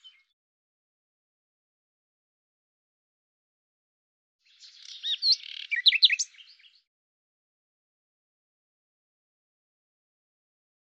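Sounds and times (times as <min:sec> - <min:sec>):
common nightingale singing: 0:04.5 - 0:06.9.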